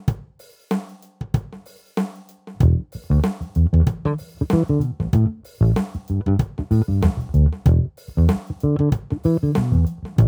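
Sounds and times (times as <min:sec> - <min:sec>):
funky rhythm: 0:02.6 - 0:10.2.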